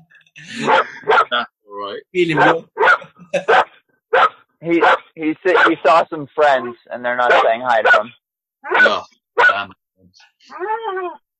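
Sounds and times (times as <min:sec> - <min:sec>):
speech: 0:00.4 - 0:02.7, 0:03.3 - 0:03.7, 0:04.6 - 0:11.2
dog barking: 0:00.6 - 0:01.4, 0:02.4 - 0:05.8, 0:06.6 - 0:09.7.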